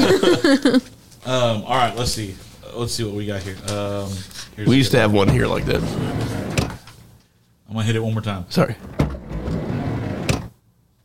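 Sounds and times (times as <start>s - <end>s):
laughter: 0.0s - 0.9s
speech: 0.1s - 6.6s, 7.7s - 9.0s
van sliding door rumbling along its track: 5.2s - 6.8s, 8.8s - 10.6s.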